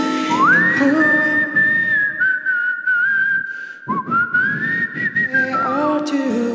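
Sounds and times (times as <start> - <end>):
person whistling a melody: 0.1 - 6.4.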